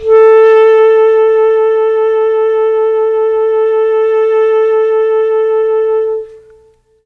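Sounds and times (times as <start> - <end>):
mellotron clarinet note A3: 0.0 - 7.0.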